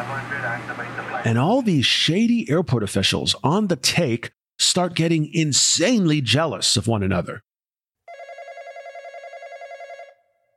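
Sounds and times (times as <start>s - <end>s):
speech: 0.6s - 7.5s
telephone ring with bright buzzing warbling tone: 8.1s - 10.5s.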